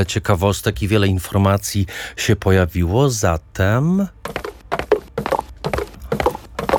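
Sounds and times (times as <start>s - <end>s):
speech: 0.0s - 4.4s
horse galloping: 4.0s - 6.7s.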